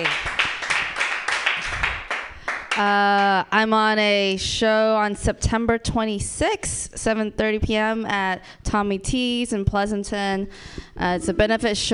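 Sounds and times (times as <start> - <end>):
audience clapping wildly for a show host: 0.0 - 3.3
speech: 2.8 - 11.9.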